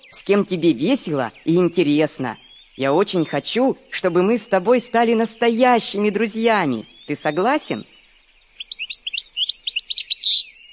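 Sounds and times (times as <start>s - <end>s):
small bird singing a warbling phrase: 0.0s - 10.7s
speech: 0.1s - 8.0s.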